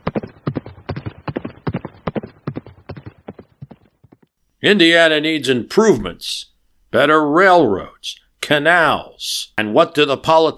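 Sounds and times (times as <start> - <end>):
ridden horse's hooves clip-clopping on back roads in Indiana: 0.0 - 4.4
speech: 4.6 - 10.5.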